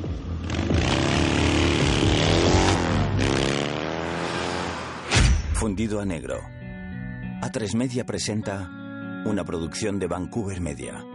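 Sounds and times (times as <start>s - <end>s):
motorcycle starting and speeding away from a hospital: 0.0s - 5.1s
speech: 5.6s - 6.6s, 7.4s - 11.1s.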